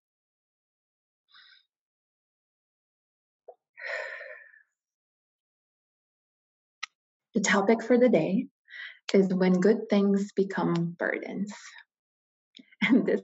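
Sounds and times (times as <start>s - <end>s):
deep breath: 3.8s - 4.6s
speech: 7.4s - 11.8s, 12.8s - 13.2s.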